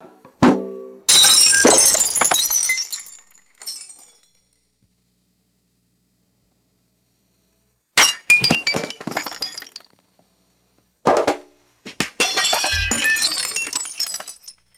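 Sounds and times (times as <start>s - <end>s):
large glass jugs shattering and bouncing: 1.1s - 4.2s, 8.0s - 9.9s, 12.2s - 14.7s.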